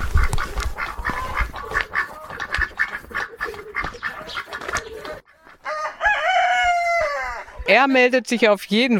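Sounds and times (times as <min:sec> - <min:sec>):
ducks quacking in a garden poultry yard: 0:00.0 - 0:05.7
chickens cackling in a garden poultry yard: 0:00.0 - 0:08.8
rooster crowing: 0:05.6 - 0:07.6
speech: 0:07.7 - 0:08.9.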